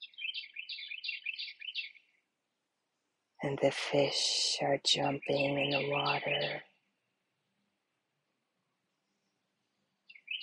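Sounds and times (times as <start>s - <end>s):
birds singing along a riverbank: 0.0s - 2.2s, 5.1s - 6.8s, 10.0s - 10.4s
speech: 3.4s - 6.7s.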